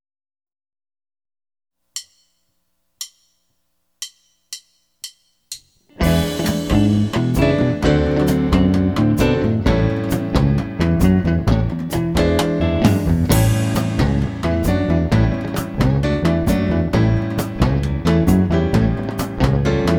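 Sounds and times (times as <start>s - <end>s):
blues rumba in A: 5.5s - 19.9s.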